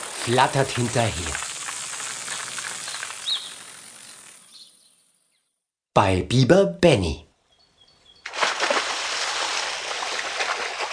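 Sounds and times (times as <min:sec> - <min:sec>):
speech: 0:00.2 - 0:01.5, 0:06.0 - 0:07.3
something landing in a river with a loud splash: 0:08.3 - 0:10.9
steady churning and rushing river water: 0:08.3 - 0:10.9.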